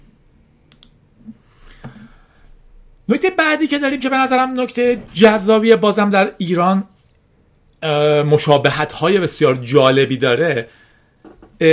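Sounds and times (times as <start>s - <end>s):
faint hiss: 0.0s - 11.7s
quiet clicks: 0.7s - 1.0s
speech: 3.1s - 6.9s, 7.8s - 10.8s.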